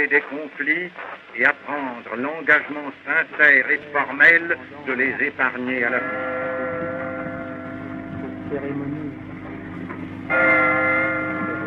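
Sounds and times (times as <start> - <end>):
speech: 0.0 - 6.5, 8.5 - 9.0, 10.3 - 10.7
low rumble: 3.8 - 11.6
church bell tolling a death knell at a war dead commemoration: 5.6 - 11.6.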